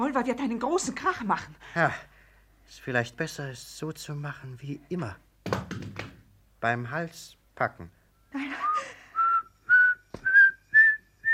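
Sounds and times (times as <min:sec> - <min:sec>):
speech: 0:00.1 - 0:02.1, 0:02.7 - 0:05.9, 0:06.6 - 0:09.0
person whistling short clear notes: 0:08.5 - 0:11.3.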